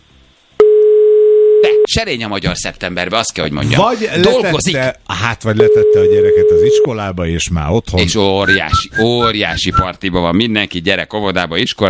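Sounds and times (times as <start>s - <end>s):
telephone ringback tone on an outgoing call to a number in Hungary: 0.6s - 1.9s, 5.7s - 6.8s
speech: 1.6s - 11.8s.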